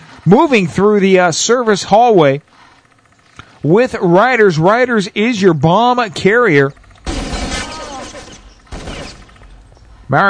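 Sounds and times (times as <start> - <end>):
speech: 0.2 - 2.6, 3.6 - 6.8
LR-300 rifle fire in a competitive bomb-plant video game match: 7.0 - 9.3.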